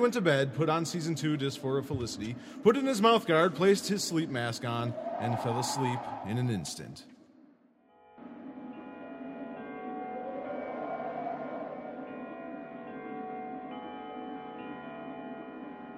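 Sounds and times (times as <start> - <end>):
speech: 0.0 - 7.1
church bells ringing: 8.7 - 15.9.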